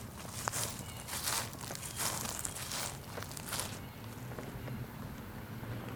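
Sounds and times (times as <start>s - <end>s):
footsteps crunching on dry leaves while walking in a neighborhood: 0.0s - 4.5s
low constant outdoor rumble: 0.0s - 5.9s.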